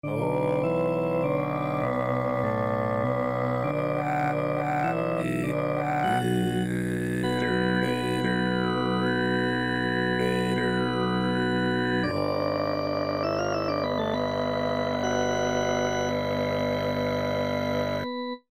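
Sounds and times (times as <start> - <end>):
Kargyraa throat singing: 0.0 - 17.3.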